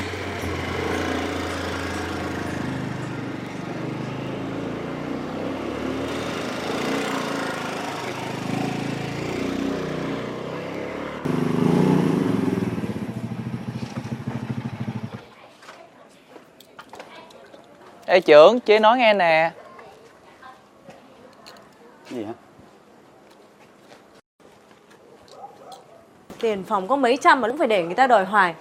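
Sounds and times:
motorbike taxi engine droning: 0.0s - 15.3s
speech: 18.1s - 19.6s, 26.4s - 28.5s.

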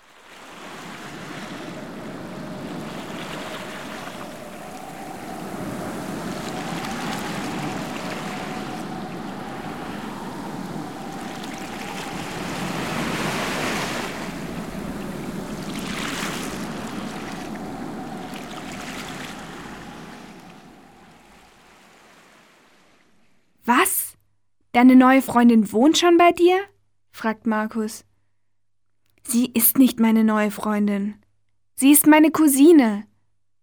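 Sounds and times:
rushing surf: 0.0s - 23.2s
gusting wind: 0.0s - 23.5s
coast guard boat motor humming on the sea: 0.8s - 21.4s
speech: 24.8s - 28.1s, 29.2s - 31.2s, 31.8s - 33.1s.

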